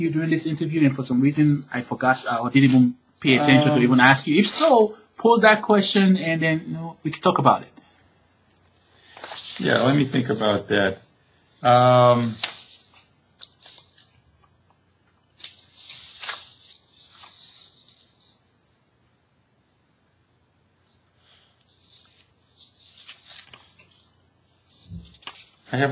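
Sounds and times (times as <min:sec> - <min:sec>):
speech: 0:00.0 - 0:07.8, 0:09.6 - 0:11.0, 0:11.6 - 0:12.4, 0:25.7 - 0:25.9
person vocalizing: 0:03.2 - 0:04.0
soft crisp paper rustling: 0:09.0 - 0:10.5, 0:12.0 - 0:14.6, 0:15.2 - 0:18.4, 0:21.3 - 0:25.9.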